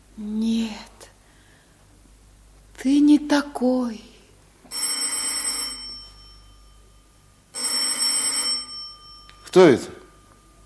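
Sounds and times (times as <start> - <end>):
faint low hum: 0.0 - 10.6
speech: 0.2 - 0.5, 2.8 - 4.1, 9.5 - 10.0
telephone bell ringing: 4.7 - 10.6.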